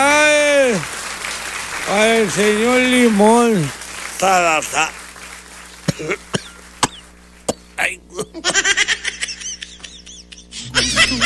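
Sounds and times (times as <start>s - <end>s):
laughter: 0.9s - 11.2s
speech: 2.0s - 5.0s, 6.0s - 6.3s, 7.8s - 8.9s
person coughing from whooping cough: 5.9s - 8.7s.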